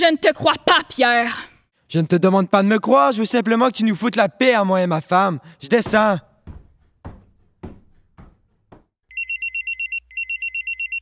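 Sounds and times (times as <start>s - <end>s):
speech: 0.0s - 6.3s
heavy thuds: 5.8s - 9.0s
mobile phone alarm ringing with a bright electronic trill: 9.1s - 11.0s.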